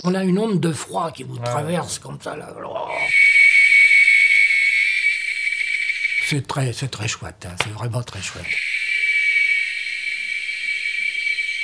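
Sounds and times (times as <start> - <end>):
speech: 0.0 - 3.3, 6.3 - 8.7
chorus of seven cicada species in Veracruz state Mexico: 3.1 - 7.3, 7.9 - 11.6.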